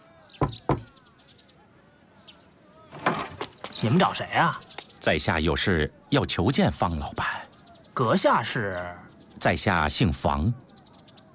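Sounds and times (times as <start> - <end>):
firm knocking on a wooden door: 0.4 - 0.9
rustling and scraping: 2.9 - 4.0
speech: 3.8 - 7.4, 8.0 - 10.6.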